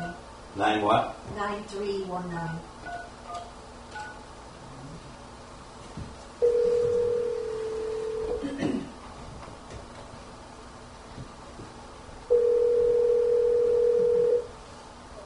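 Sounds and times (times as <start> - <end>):
faint room noise: 0.0 - 15.2
steady telephone dial tone: 6.4 - 8.4, 12.3 - 14.5.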